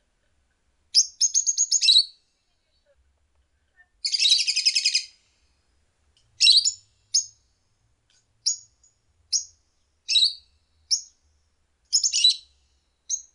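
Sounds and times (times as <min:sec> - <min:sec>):
lovebird calls: 0:01.0 - 0:02.2, 0:04.0 - 0:05.2, 0:06.4 - 0:07.4, 0:10.1 - 0:11.1, 0:11.9 - 0:12.5.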